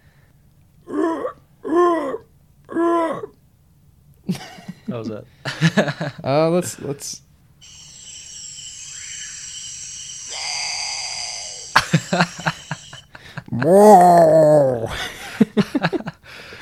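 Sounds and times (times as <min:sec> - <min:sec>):
person imitating a great potoo call with mournful wails: 0:00.9 - 0:03.3, 0:07.6 - 0:14.9
speech: 0:04.3 - 0:07.3, 0:12.1 - 0:12.6, 0:13.6 - 0:15.2
brief breathy sound: 0:07.6 - 0:13.2
steady high insect-like hiss: 0:07.6 - 0:13.2
laughter: 0:11.6 - 0:13.8.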